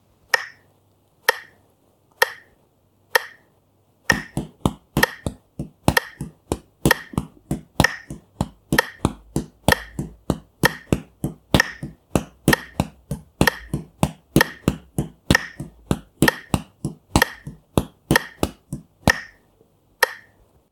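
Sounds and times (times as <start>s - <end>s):
beat cut into parts: 4.1s - 19.4s.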